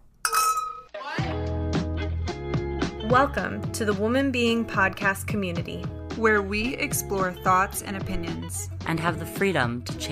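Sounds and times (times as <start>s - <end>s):
wine glasses clinking in a toast: 0.3s - 0.9s
music: 0.9s - 10.1s
speech: 3.1s - 10.1s.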